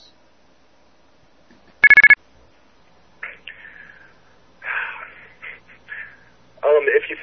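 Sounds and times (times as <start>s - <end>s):
house phones with warbling, chirpy ring tones ringing: 1.8s - 2.2s
sharp electronic house phone beeps: 1.8s - 2.2s.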